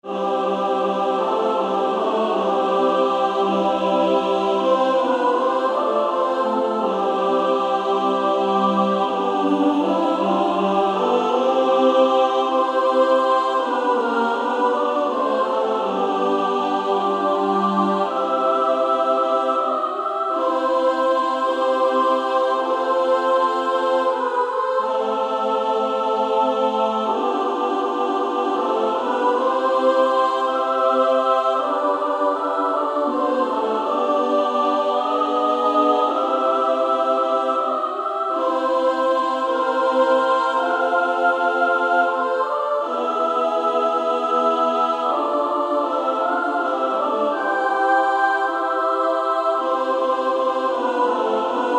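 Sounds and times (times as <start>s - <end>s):
female choir singing: 0.0s - 51.7s.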